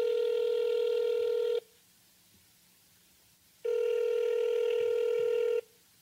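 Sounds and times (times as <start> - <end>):
electronic telephone ringing tones of a call to a cell phone: 0.0 - 1.6, 3.6 - 5.7.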